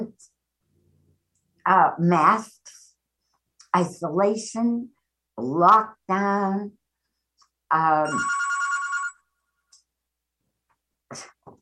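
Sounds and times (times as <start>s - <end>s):
speech: 1.6s - 2.7s, 3.7s - 6.8s, 7.7s - 8.4s, 11.1s - 11.3s
old-style telephone bell ringing: 8.0s - 9.3s.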